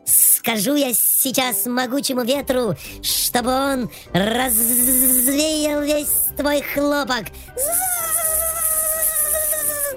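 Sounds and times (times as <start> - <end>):
speech: 0.4 - 7.9
mosquito whining as it flies: 4.1 - 5.5, 7.6 - 9.9.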